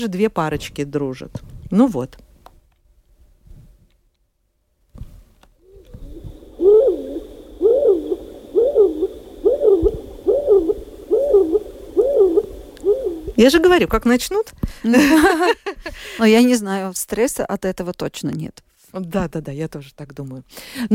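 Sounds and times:
speech: 0.0s - 2.3s, 13.4s - 20.9s
turtle dove cooing: 5.6s - 13.7s.

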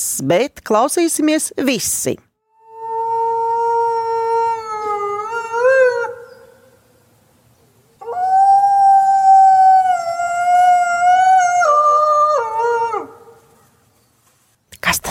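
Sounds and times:
speech: 0.2s - 2.3s
wolf howling: 2.6s - 6.7s, 8.0s - 13.4s.

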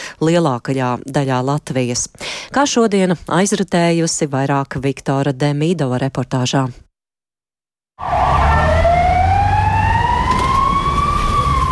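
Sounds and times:
speech: 0.2s - 6.8s
emergency service vehicle siren wailing: 8.0s - 11.6s.

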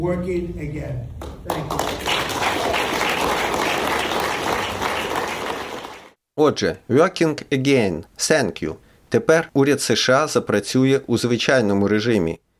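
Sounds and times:
speech: 0.0s - 2.5s, 6.4s - 12.4s
aides applauding as a law ending a US government shutdown is signed: 1.2s - 6.2s.

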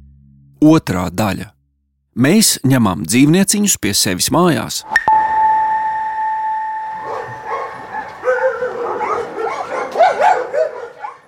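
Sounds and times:
speech: 0.6s - 1.6s, 2.2s - 5.1s
steady high electronic tone: 4.9s - 7.9s
dogs barking and yelping at an animal shelter: 6.8s - 11.2s.

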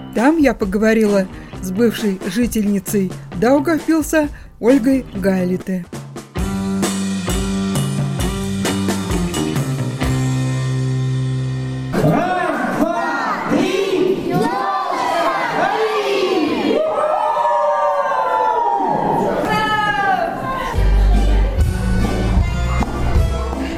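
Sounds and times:
speech: 0.2s - 6.0s
loud music with steady beat at Christmas party: 1.1s - 12.0s, 20.7s - 23.7s
crowd of adults and children talking and shouting at Christmas party: 11.9s - 23.7s.

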